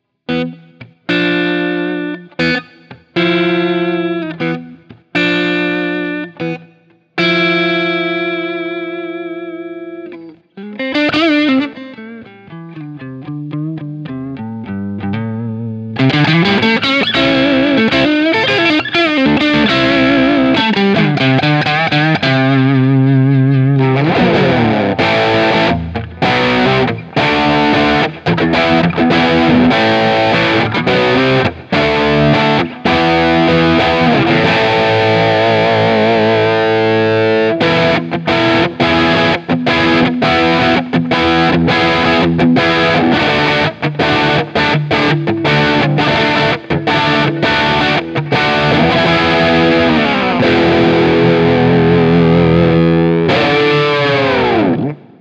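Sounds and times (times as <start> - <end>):
electric guitar through a vintage basketweave four by twelve cabinet: 0.0 - 55.1.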